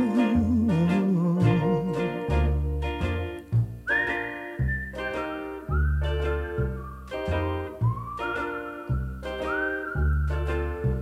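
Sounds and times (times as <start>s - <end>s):
bouncy instrumental backing with a regular beat: 0.0s - 11.0s
bright whistled melody: 0.0s - 11.0s.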